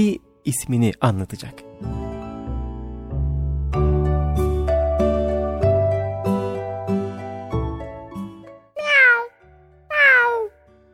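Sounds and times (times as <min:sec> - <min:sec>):
speech: 0:00.0 - 0:02.0
short piano-like melody: 0:01.8 - 0:08.4
cat meowing: 0:08.8 - 0:09.3, 0:09.9 - 0:10.5.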